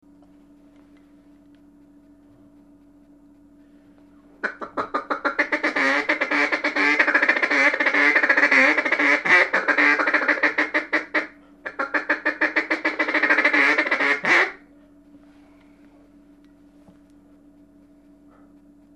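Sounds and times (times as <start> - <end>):
mallard duck feed call: 4.4 - 14.6.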